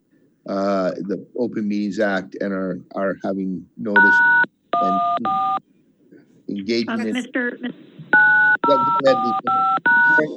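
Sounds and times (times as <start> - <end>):
talk: 0.5 - 5.4, 6.5 - 10.3
speech: 0.5 - 5.7, 6.5 - 7.9, 8.6 - 10.3
phone keypad touch-tone beeps: 4.0 - 5.6, 7.0 - 10.3.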